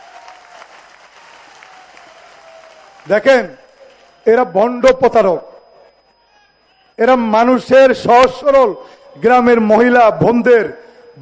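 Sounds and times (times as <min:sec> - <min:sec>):
crowd clapping at a political gathering for a project inauguration: 0:00.0 - 0:04.5
speech: 0:03.0 - 0:03.6, 0:04.2 - 0:05.5, 0:07.0 - 0:11.2.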